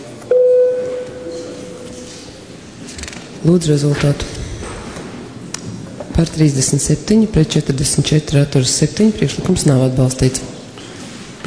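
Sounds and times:
electronic voting bell in a parliament chamber during a plenary vote: 0:00.3 - 0:02.0
speech: 0:03.4 - 0:04.4, 0:06.2 - 0:10.6.

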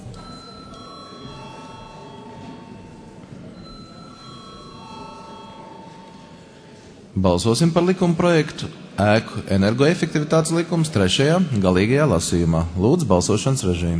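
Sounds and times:
electric bell ringing in a parliament chamber to call a vote: 0:00.0 - 0:07.0
low constant room murmur in a parliament chamber: 0:00.0 - 0:10.7
speech: 0:07.2 - 0:13.9.

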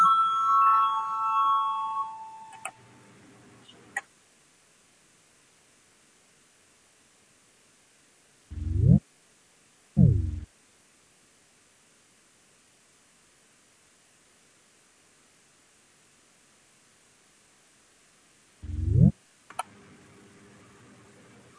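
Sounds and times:
parliament chamber bell electronic chime rung before a vote: 0:00.0 - 0:02.7
short low buzzing tones: 0:08.5 - 0:09.0, 0:10.0 - 0:10.5, 0:18.6 - 0:19.1.

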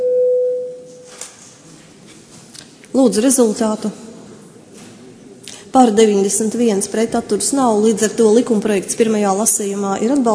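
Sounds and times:
electronic sine tone signalling parliamentary voting mode: 0:00.0 - 0:01.0
speech: 0:03.0 - 0:04.0, 0:05.8 - 0:10.3.

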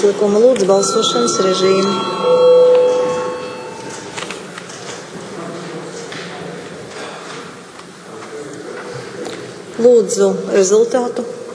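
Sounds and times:
speech: 0:00.0 - 0:02.6, 0:09.8 - 0:11.4
bell rung in a parliament chamber to call a vote: 0:00.7 - 0:05.0.

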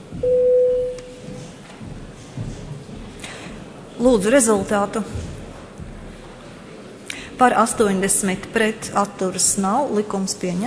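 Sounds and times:
low murmur of room noise in a large hall: 0:00.0 - 0:10.6
electronic parliament voting bell tone: 0:00.2 - 0:01.3
speech: 0:04.0 - 0:05.3, 0:07.4 - 0:10.6.

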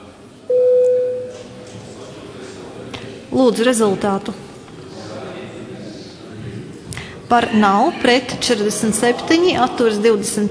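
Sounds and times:
electronic signal tone calling parliament members to a vote: 0:00.5 - 0:01.4
speech: 0:03.3 - 0:04.4, 0:07.3 - 0:10.5.

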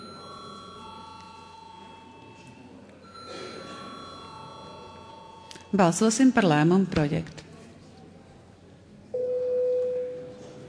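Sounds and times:
faint murmuring voices: 0:00.0 - 0:05.8, 0:07.3 - 0:09.1
continuous electric parliamentary voting bell ringing: 0:00.0 - 0:06.4
speech: 0:05.7 - 0:07.4.

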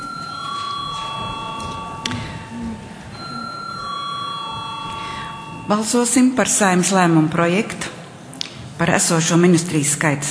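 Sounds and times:
parliament chamber electric bell ringing before vote: 0:00.0 - 0:06.4
faint murmur in parliament chamber: 0:00.0 - 0:10.2
speech: 0:05.7 - 0:08.0, 0:08.8 - 0:10.2.

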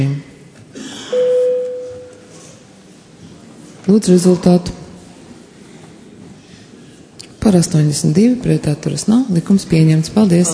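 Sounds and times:
faint noise: 0:00.0 - 0:10.5
parliamentary voting bell steady electronic tone: 0:01.1 - 0:02.5
speech: 0:03.9 - 0:04.8, 0:07.5 - 0:10.5.

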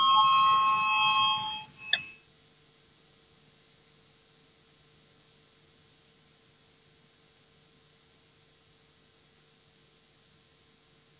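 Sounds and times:
parliamentary voting bell ringing: 0:00.0 - 0:02.1.

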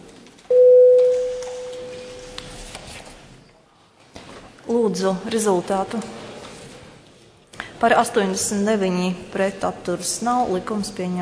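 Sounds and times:
faint noise: 0:00.0 - 0:11.2
parliamentary voting bell electronic tone before a vote: 0:00.5 - 0:02.4
speech: 0:04.7 - 0:06.2, 0:07.8 - 0:11.2.

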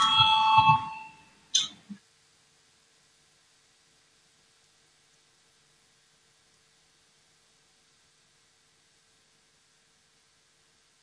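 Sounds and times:
parliament chamber voting bell ringing electronic tone: 0:00.0 - 0:01.3.

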